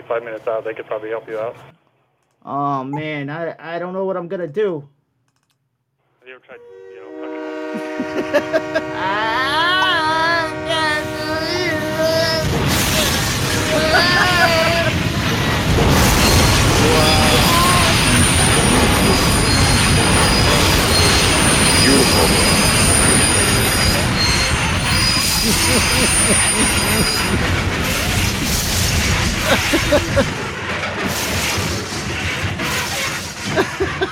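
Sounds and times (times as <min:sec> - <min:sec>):
speech: 0:00.1 - 0:01.8, 0:02.4 - 0:05.0, 0:06.3 - 0:07.0, 0:07.8 - 0:10.9, 0:25.4 - 0:27.8, 0:29.5 - 0:30.4, 0:31.0 - 0:32.0
subway train rumbling along the rails: 0:06.7 - 0:34.1
laughter: 0:07.7 - 0:10.6, 0:12.9 - 0:15.2, 0:16.4 - 0:19.4, 0:25.0 - 0:28.1, 0:29.2 - 0:30.4, 0:33.4 - 0:34.1
subway train wheels squealing on rails: 0:12.0 - 0:34.1.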